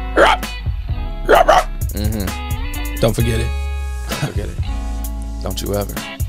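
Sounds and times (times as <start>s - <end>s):
person imitating gruff dog barks: 0.1s - 0.5s, 1.2s - 2.4s
speech: 3.0s - 3.6s, 4.2s - 4.7s, 5.4s - 6.1s.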